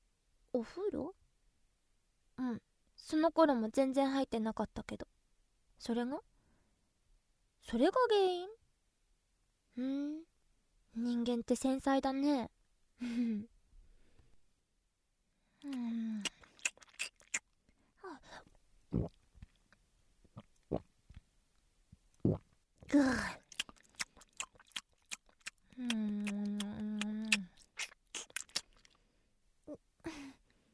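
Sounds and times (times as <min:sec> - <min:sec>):
speech: 0:00.6 - 0:01.2, 0:02.4 - 0:05.1, 0:05.8 - 0:06.3, 0:07.6 - 0:08.6, 0:09.8 - 0:10.3, 0:10.9 - 0:13.5, 0:15.6 - 0:16.4, 0:22.3 - 0:23.4, 0:25.8 - 0:26.9
person chewing and biting through a meal: 0:15.6 - 0:17.6, 0:22.1 - 0:29.0.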